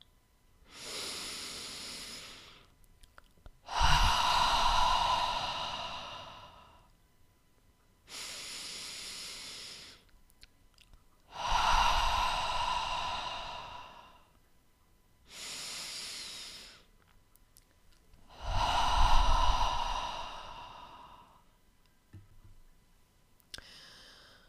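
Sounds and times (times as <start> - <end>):
long rushing exhale through the mouth: 0.7 - 2.7, 3.6 - 6.9, 8.1 - 10.1, 11.3 - 14.3, 15.3 - 16.9, 18.3 - 21.5, 23.6 - 24.4
slow deep inhale through the nose: 0.7 - 2.7, 3.6 - 6.9, 8.1 - 10.1, 11.3 - 14.3, 15.3 - 16.9, 18.3 - 21.5, 23.6 - 24.4.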